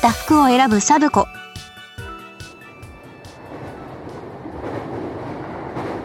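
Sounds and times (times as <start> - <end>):
speech: 0.0 - 1.4
low rumble of wheels and car noise inside a moving train: 1.2 - 6.0.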